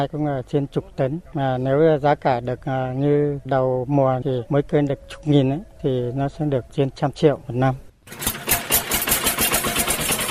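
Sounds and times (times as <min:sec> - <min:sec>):
speech: 0:00.0 - 0:08.2
tractor engine chugging outdoors in a custard apple growing area: 0:08.1 - 0:10.2.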